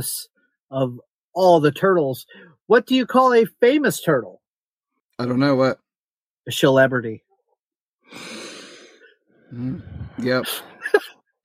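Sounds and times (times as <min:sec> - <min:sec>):
speech: 0:00.0 - 0:04.4, 0:05.2 - 0:05.8, 0:06.4 - 0:07.2, 0:08.1 - 0:08.4, 0:09.5 - 0:11.1
deep aggressive inhale: 0:08.1 - 0:10.4.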